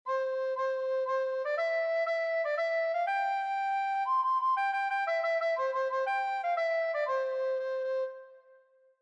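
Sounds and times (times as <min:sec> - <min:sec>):
recorder playing a nursery rhyme: 0:00.1 - 0:08.2.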